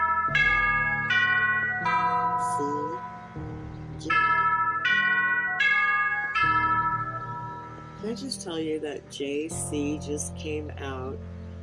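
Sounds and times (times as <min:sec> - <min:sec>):
prayer bell phone notification chime: 0:00.0 - 0:08.6
speech: 0:08.1 - 0:11.4.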